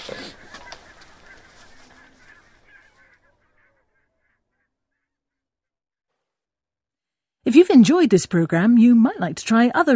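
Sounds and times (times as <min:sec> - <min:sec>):
flock of compact little geese honking: 0:00.0 - 0:05.4
speech: 0:07.5 - 0:09.9.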